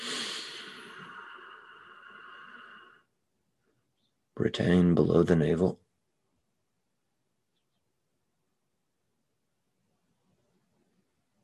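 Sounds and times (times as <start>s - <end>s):
long deep breath during a guided breathing exercise: 0.0s - 3.2s
speech: 4.4s - 5.8s.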